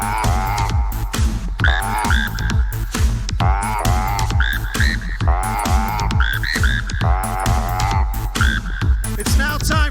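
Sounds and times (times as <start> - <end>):
chorus of frog croaks played from phones through small speakers: 0.0 - 2.8, 3.4 - 9.8.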